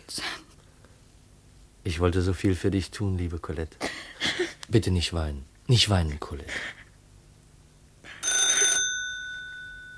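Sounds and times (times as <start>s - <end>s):
speech: 1.8s - 4.0s, 4.7s - 6.8s
telephone bell ringing: 8.1s - 9.9s.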